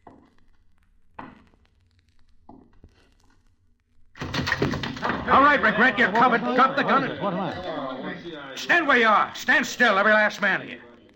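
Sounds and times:
door crashing open as it is kicked in: 4.2s - 5.7s
laughter: 5.1s - 9.0s
speech: 5.3s - 10.9s.

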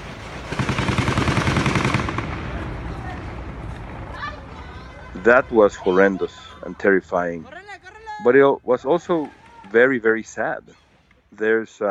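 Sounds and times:
rapid bursts of gunfire: 0.0s - 4.1s, 8.9s - 11.3s
chaotic commotion: 0.0s - 11.6s
shouting: 1.1s - 11.8s
laughter: 4.1s - 10.3s
speech: 5.2s - 7.6s, 8.2s - 11.8s.

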